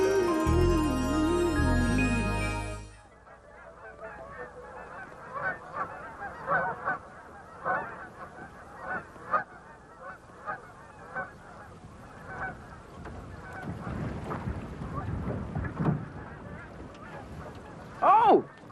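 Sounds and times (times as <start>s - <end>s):
geese honking on open water of the Chesapeake Bay: 0.0s - 12.6s
boat noise on the Chesapeake Bay: 0.0s - 18.7s
wind over the Chesapeake Bay: 0.0s - 18.7s.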